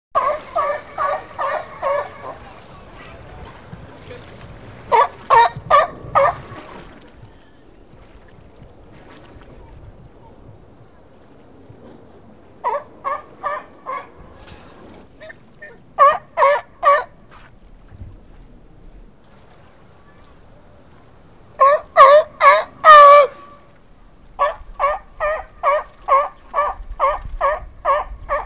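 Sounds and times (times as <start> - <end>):
sea lion: 0.2 - 3.8, 4.4 - 6.7, 9.5 - 17.4, 21.6 - 23.7, 24.4 - 28.4.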